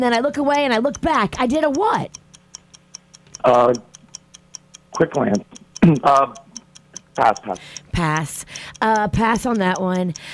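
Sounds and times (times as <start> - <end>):
speech: 0.0 - 2.2, 3.4 - 3.9, 5.0 - 6.4, 7.2 - 10.3
60-second game countdown clock ticking: 0.0 - 10.3.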